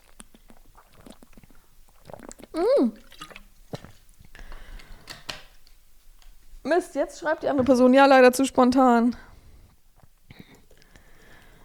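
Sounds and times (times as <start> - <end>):
person sipping water: 0.0 - 5.3, 9.7 - 11.6
wet mouth clicks: 0.0 - 5.3, 10.0 - 11.1
loud gulp: 2.1 - 3.9
water dripping: 2.2 - 4.8
speech: 6.7 - 9.3.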